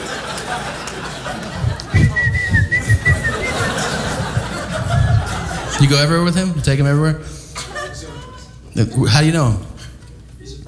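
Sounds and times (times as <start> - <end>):
laughter: 0.0 - 6.6, 7.6 - 8.6
murmur of voices: 0.0 - 10.6
person whistling a brief wavering tune: 2.0 - 3.9
speech: 5.8 - 7.4, 8.8 - 9.7.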